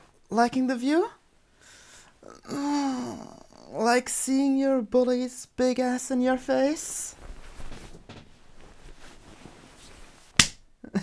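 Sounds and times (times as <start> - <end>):
speech: 0.3 - 1.2, 2.2 - 7.2
quiet rustling background: 6.4 - 10.5
hand slapping bare skin: 10.4 - 10.7.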